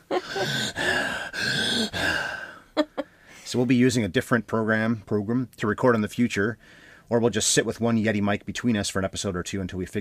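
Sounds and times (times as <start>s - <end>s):
speech: 0.1s - 0.8s, 3.5s - 10.0s
heavy rasping breathing into microphone: 0.2s - 3.5s, 6.6s - 7.1s.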